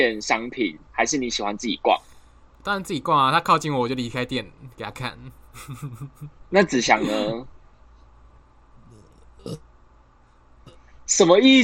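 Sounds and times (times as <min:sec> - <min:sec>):
speech: 0:00.0 - 0:07.6, 0:09.4 - 0:09.7, 0:11.1 - 0:11.6
faint voices murmuring: 0:04.1 - 0:06.3, 0:07.0 - 0:07.4
laughter: 0:04.2 - 0:07.3
short throaty burp after eating: 0:08.9 - 0:09.6.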